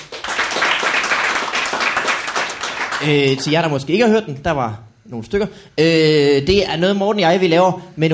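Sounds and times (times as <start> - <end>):
crowd applauding: 0.0 - 3.7
speech: 3.0 - 8.1.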